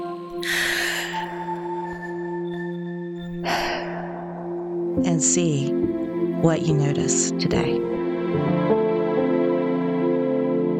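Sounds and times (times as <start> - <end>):
steady sustained musical drone: 0.0 - 10.7
deep breath: 0.4 - 2.4, 3.3 - 5.0
speech: 5.0 - 8.7.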